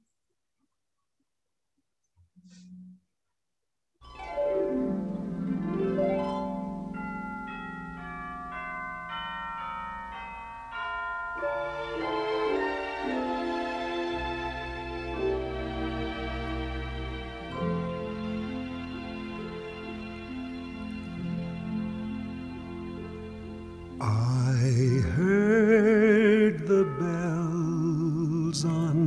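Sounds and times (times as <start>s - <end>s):
instrumental accompaniment of a recorded Christmas hymn: 4.0s - 29.0s
male singer singing a Christmas hymn with warm vibrato: 24.0s - 29.0s.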